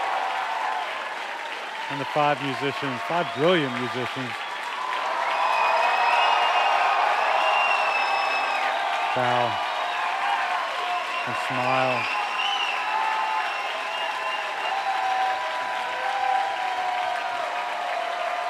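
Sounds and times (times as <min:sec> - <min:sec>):
large concert crowd applauding and cheering: 0:00.0 - 0:18.4
speech: 0:01.9 - 0:04.4, 0:09.2 - 0:09.7, 0:11.2 - 0:12.2
crowd whistles: 0:03.3 - 0:15.0.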